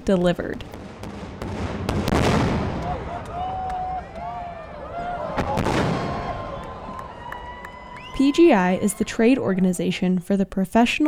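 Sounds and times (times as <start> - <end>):
speech: 0.0 - 0.8, 8.2 - 11.0
36-inch firework shells booming overhead at a fireworks trade convention: 0.6 - 6.8
crowd cheering and shouting at a fireworks trade convention: 2.7 - 10.3.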